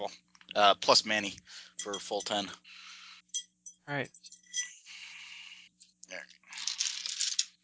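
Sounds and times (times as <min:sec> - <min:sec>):
speech: 0:00.0 - 0:04.7
dice rolling on a hard tabletop: 0:06.6 - 0:07.6.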